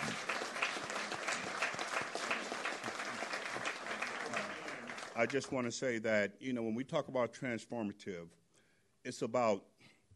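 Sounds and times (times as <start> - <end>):
audience applause of many hands clapping: 0.0 - 5.6
speech: 5.2 - 8.4, 9.0 - 9.7.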